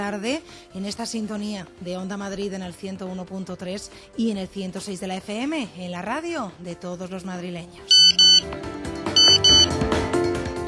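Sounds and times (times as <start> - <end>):
speech: 0.0 - 8.7
busy musical background: 0.0 - 10.6
alarm clock ringing in shrill electronic bursts: 7.9 - 8.4, 9.2 - 9.7.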